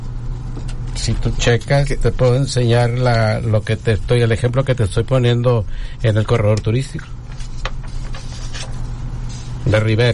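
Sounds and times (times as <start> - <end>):
steady low hum: 0.0 - 10.1
speech: 1.0 - 7.2, 9.7 - 10.1
sheets of paper rustling and crinkling: 7.3 - 9.7.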